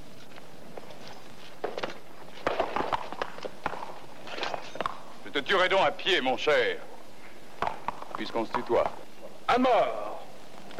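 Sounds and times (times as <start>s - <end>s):
ridden horse hooves clip-clopping: 0.0s - 5.3s, 7.5s - 9.4s
speech: 5.4s - 6.9s, 8.2s - 10.0s.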